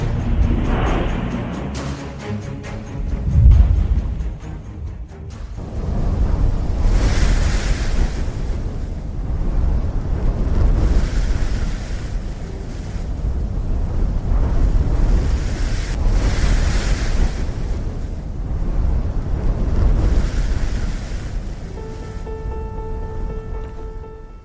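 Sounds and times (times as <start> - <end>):
strong desert sandstorm wind roaring and gusting: 0.0 - 24.4
sandstorm wind buffeting the microphone: 3.0 - 4.4, 5.6 - 22.0.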